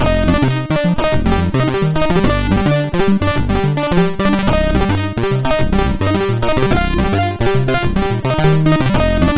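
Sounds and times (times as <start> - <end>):
SID MOS6581R4 synthesizer chip sound with reverb: 0.0 - 9.3.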